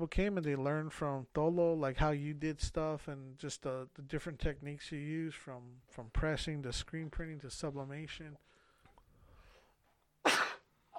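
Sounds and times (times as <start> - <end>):
speech: 0.0 - 8.6
person sneezing: 10.2 - 10.9.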